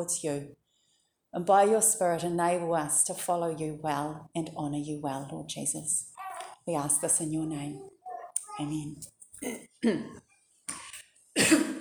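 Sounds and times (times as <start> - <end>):
speech: 0.0 - 0.6, 1.3 - 7.9, 8.6 - 10.2
person coughing: 9.4 - 10.2, 11.4 - 11.8.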